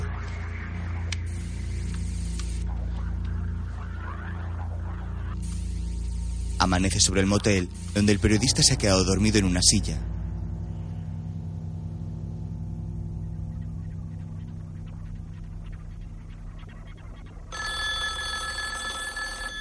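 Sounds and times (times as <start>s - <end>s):
low continuous drone: 0.0s - 19.6s
speech: 6.6s - 10.1s
telephone ringing on a bed in a motel room: 17.5s - 19.6s.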